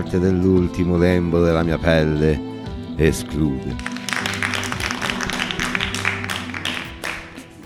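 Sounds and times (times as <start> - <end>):
speech: 0.0 - 4.0
audience applause at a poetry challenge: 3.8 - 7.6.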